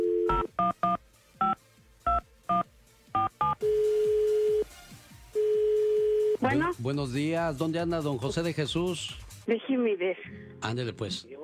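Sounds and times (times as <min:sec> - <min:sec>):
steady telephone ringback tone on the line: 0:00.0 - 0:02.6, 0:03.2 - 0:04.7, 0:05.4 - 0:06.5
speech: 0:06.5 - 0:11.3.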